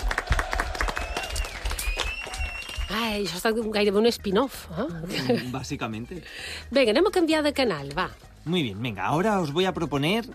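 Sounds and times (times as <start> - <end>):
audience applauding loudly: 0.0 - 3.2
speech: 2.9 - 10.3.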